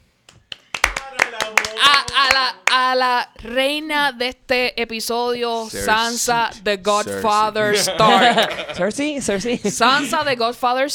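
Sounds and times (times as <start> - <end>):
sharp hand claps: 0.2 - 2.8
speech: 1.5 - 10.9
person vocalizing: 5.4 - 8.7
laughter: 5.8 - 10.4.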